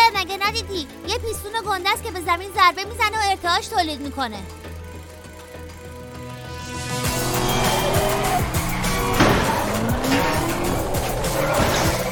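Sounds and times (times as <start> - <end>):
speech: 0.8 - 4.7
car engine revving: 6.6 - 12.0
car tires squealing and skidding: 7.0 - 12.0.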